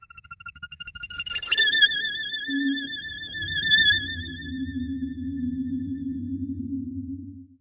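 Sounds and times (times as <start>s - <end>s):
sudden light eerie swell: 2.5s - 7.6s.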